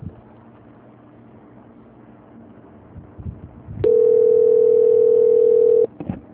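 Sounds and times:
low noise: 0:00.0 - 0:06.3
telephone ringing tone during a call transfer: 0:03.8 - 0:05.9.

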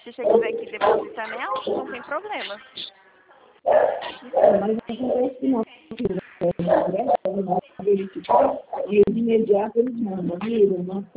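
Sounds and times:
speech: 0:00.0 - 0:03.0, 0:03.6 - 0:11.1
dog barking and yipping: 0:00.2 - 0:01.8, 0:03.7 - 0:04.6, 0:08.3 - 0:08.9.

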